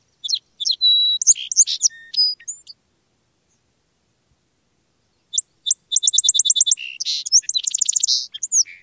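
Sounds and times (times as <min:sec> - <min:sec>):
Song Sparrow songs: 0:00.0 - 0:02.8, 0:05.0 - 0:08.8.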